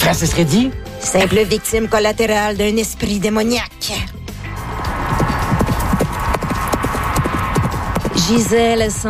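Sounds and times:
speech: 0.1s - 4.2s, 8.3s - 9.0s
outdoor noise: 4.4s - 9.0s
wild horses' hooves clip-clopping on an island: 4.8s - 9.0s.

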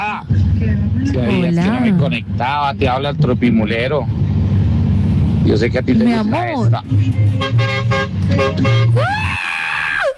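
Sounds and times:
dense noise: 0.0s - 10.1s
speech: 1.0s - 4.2s, 5.5s - 9.4s
large truck horn sustained toot: 6.9s - 9.2s.

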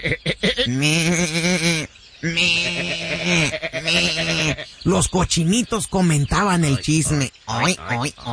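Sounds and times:
speech: 0.0s - 1.2s, 3.9s - 8.3s
sheep bleating on a ranch: 0.6s - 4.8s.

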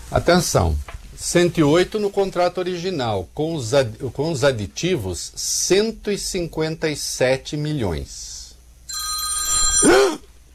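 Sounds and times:
speech: 0.1s - 8.4s
phone ringtone for an accidental incoming call: 8.9s - 10.2s.

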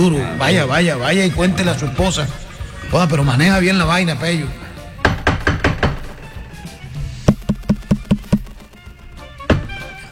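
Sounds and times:
speech: 0.0s - 4.6s
firm knocking on a door: 5.0s - 6.2s, 7.3s - 9.7s.

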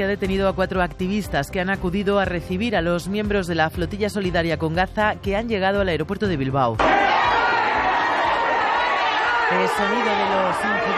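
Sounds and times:
speech: 0.0s - 7.0s, 9.5s - 10.9s
crowd chatter at a security cordon in an airport: 6.8s - 10.9s
raised voices calling out at an airport security cordon: 6.8s - 10.9s.

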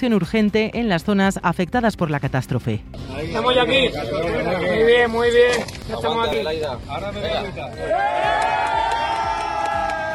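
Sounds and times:
speech: 0.0s - 8.8s
military emergency rescuers cheering and shouting as survivors are pulled from rubble: 7.7s - 10.1s.

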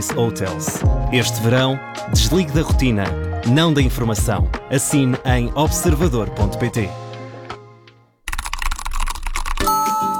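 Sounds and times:
speech: 0.0s - 7.0s
rapid typing on a computer keyboard: 8.3s - 9.8s.

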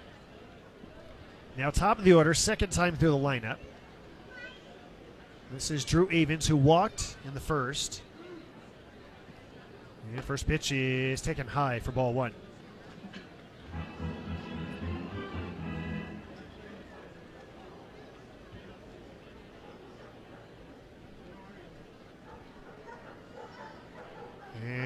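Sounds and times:
speech: 1.6s - 3.7s, 5.5s - 8.1s, 10.1s - 12.4s
murmuring ballpark crowd chatter: 13.6s - 17.6s
several dogs barking and yipping: 22.3s - 24.5s.

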